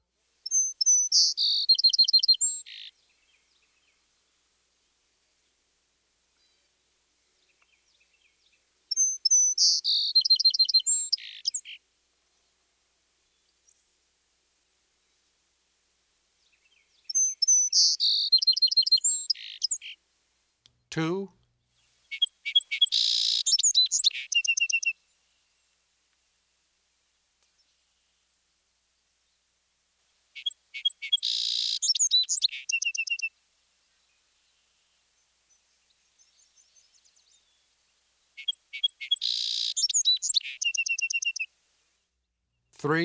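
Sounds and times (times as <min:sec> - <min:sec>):
song sparrow singing: 0:00.4 - 0:04.1, 0:06.3 - 0:12.6, 0:13.2 - 0:14.1, 0:16.4 - 0:20.0, 0:21.8 - 0:25.8, 0:30.3 - 0:41.6
speech: 0:21.0 - 0:21.4, 0:42.8 - 0:43.0.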